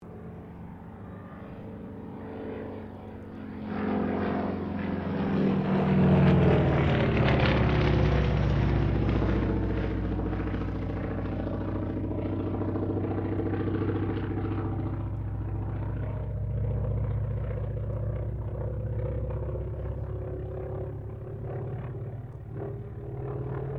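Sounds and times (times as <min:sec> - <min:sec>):
CAC Wirraway CA-16 aircraft engine: 0:00.0 - 0:23.7.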